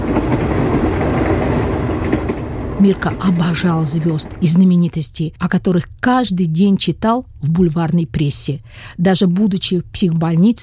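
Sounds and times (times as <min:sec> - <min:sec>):
express train rumbling on rails: 0:00.0 - 0:04.8
speech: 0:02.8 - 0:10.6.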